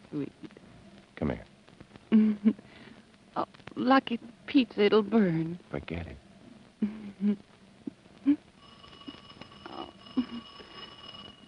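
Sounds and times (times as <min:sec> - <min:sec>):
speech: 0:00.1 - 0:00.6, 0:01.2 - 0:01.5, 0:02.2 - 0:02.7, 0:03.4 - 0:06.2, 0:06.8 - 0:07.6
electric doorbell ringing: 0:08.6 - 0:11.4.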